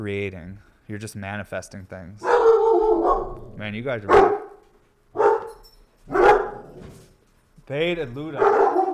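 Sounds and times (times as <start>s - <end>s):
speech: 0.0s - 4.4s, 7.7s - 8.7s
dog barking: 2.2s - 6.9s, 8.4s - 8.9s.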